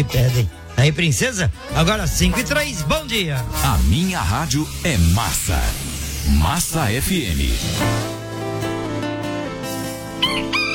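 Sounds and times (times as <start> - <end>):
speech: 0.0 - 8.1
music: 0.0 - 10.7
rooster crowing: 10.2 - 10.7.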